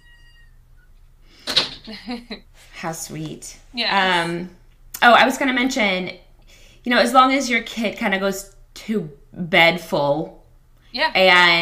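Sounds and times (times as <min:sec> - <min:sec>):
faint thin squeak: 0:00.0 - 0:00.9
door shutting with sharp thud-and-click: 0:01.4 - 0:01.9
speech: 0:01.9 - 0:06.2, 0:06.8 - 0:11.6.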